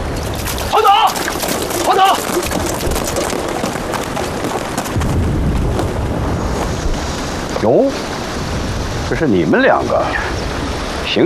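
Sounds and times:
artillery shell explosions in a dense barrage: 0.0 - 8.2
speech: 7.6 - 8.0, 9.1 - 10.4.

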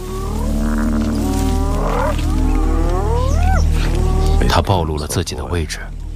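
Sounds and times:
lion growling while feeding: 0.0 - 4.7
speech: 4.6 - 6.0.

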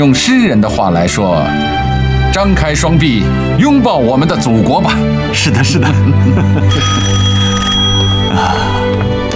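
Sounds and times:
speech: 0.0 - 7.3, 8.3 - 9.2
laughter: 4.9 - 7.1
telephone bell ringing: 6.6 - 8.3.

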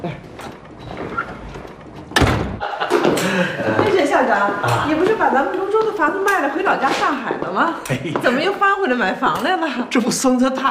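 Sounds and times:
door pushed shut: 2.1 - 2.6
laughter: 2.6 - 5.1
speech: 3.2 - 10.6.

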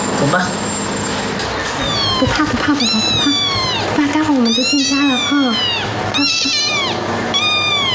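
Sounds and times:
speech: 0.2 - 0.6, 2.2 - 7.5
cat meowing: 1.8 - 7.9.

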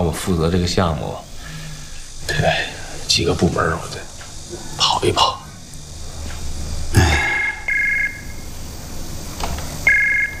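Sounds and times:
speech: 0.0 - 1.3, 2.3 - 5.4
telephone ringing with short electronic tones: 7.4 - 8.3, 9.9 - 10.3.

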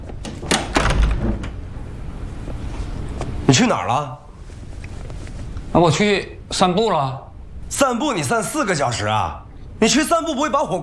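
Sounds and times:
door swinging shut: 0.0 - 1.8
speech: 3.5 - 4.2, 5.7 - 10.8.

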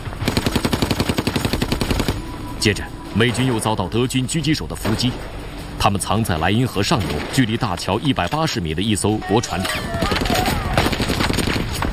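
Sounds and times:
machine gun firing from a tower across the Rhine in a wartime battle: 0.0 - 2.3, 9.9 - 11.9
speech: 2.6 - 10.2.

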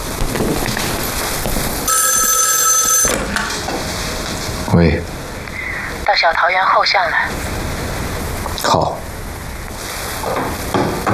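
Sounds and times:
noisy background: 0.0 - 11.1
telephone ringing: 1.9 - 3.8
speech: 4.8 - 5.1, 6.2 - 7.5, 8.6 - 9.0.

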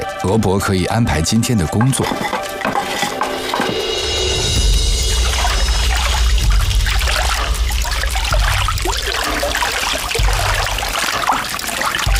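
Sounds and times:
speech: 0.3 - 2.5
fermenting liquid sloshing in large vats as workers stir it: 1.3 - 4.0, 5.2 - 12.1.

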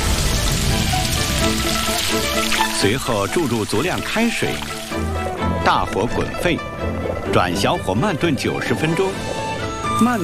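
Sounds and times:
goose meat sizzling in a wok with rice wine and dark soy sauce: 0.0 - 5.0
speech: 2.1 - 9.4, 10.0 - 10.2.

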